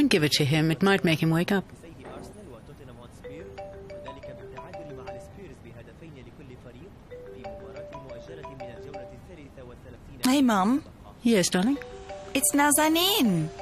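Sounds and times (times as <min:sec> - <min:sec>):
speech: 0:00.0 - 0:02.3, 0:10.2 - 0:13.6
noise: 0:00.0 - 0:13.6
mobile phone ringtone playing a short electronic melody: 0:03.2 - 0:05.6, 0:07.1 - 0:09.4, 0:11.6 - 0:13.6.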